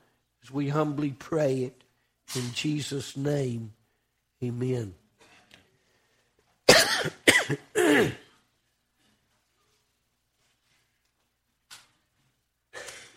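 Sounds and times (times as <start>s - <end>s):
speech: 0.5s - 3.8s, 4.4s - 5.0s, 7.0s - 8.2s
person coughing: 6.7s - 8.4s, 12.7s - 13.1s.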